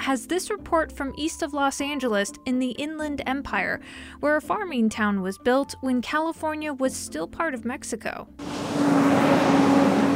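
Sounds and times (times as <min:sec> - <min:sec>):
speech: 0:00.0 - 0:09.1
delivery trucks rumbling past on street: 0:08.4 - 0:10.1.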